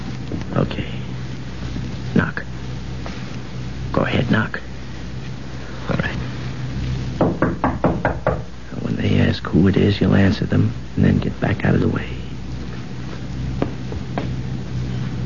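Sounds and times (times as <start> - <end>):
low rumble: 0.0 - 15.2
speech: 0.6 - 1.0, 4.2 - 4.6, 9.6 - 12.2
firm knocking on the door of a room: 7.2 - 8.5.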